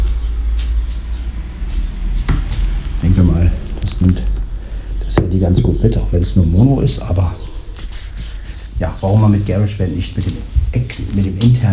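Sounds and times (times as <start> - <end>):
low rumble of passing cars outdoors: 0.0 - 7.8
speech: 4.0 - 4.4, 5.1 - 7.6, 8.8 - 11.7.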